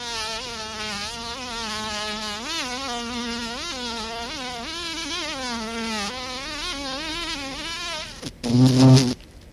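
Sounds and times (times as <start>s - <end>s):
carpenter bee buzzing: 0.0s - 9.2s.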